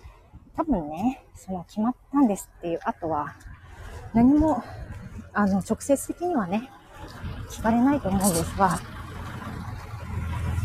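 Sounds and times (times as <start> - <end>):
low car engine and tire noise: 0.0 - 10.6
speech: 0.6 - 3.5, 4.1 - 8.9
car passing by on street: 6.8 - 10.6.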